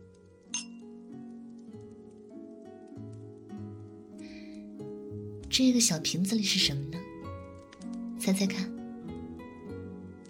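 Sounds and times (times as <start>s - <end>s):
glasses clinking in a toast with chilled fruit wine: 0.6s - 0.8s
speech: 5.6s - 7.0s, 8.3s - 8.7s.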